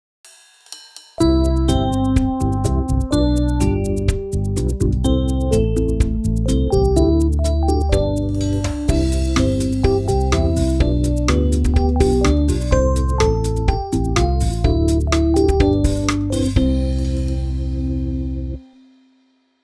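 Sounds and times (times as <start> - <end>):
music for the end of class: 0.3 - 19.6.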